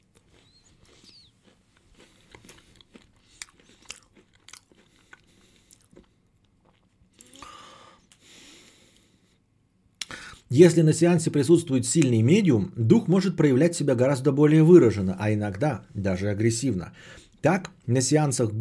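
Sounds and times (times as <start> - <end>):
person eating, crunching and chewing food: 0.0 - 9.0
speech: 10.5 - 18.5.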